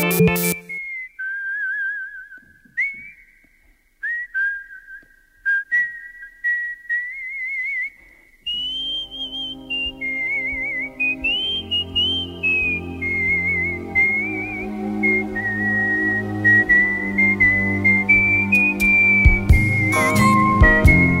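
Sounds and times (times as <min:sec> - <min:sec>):
instrumental backing music: 0:00.0 - 0:00.7, 0:08.9 - 0:21.1
whistled melody: 0:00.0 - 0:21.1.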